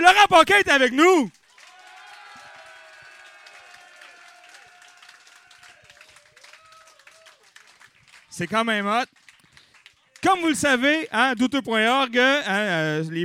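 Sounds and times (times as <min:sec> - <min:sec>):
speech: 0:00.1 - 0:01.4, 0:08.4 - 0:09.2, 0:10.2 - 0:13.2
crowd applauding: 0:01.3 - 0:10.4.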